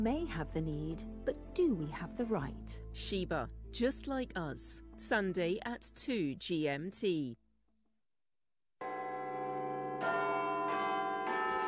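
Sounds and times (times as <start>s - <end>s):
speech: 0.0s - 7.4s
Big Ben clock-tower bells tolling: 8.8s - 11.6s.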